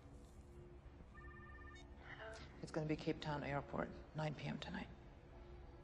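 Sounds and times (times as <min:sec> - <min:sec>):
telephone redial dialing tones: 0:01.2 - 0:01.9
speech: 0:02.7 - 0:05.0.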